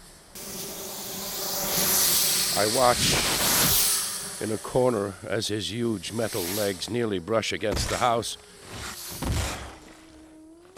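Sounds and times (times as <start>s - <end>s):
hissing jet of steam spraying: 0.0s - 7.0s
speech: 2.6s - 3.5s, 4.4s - 8.9s.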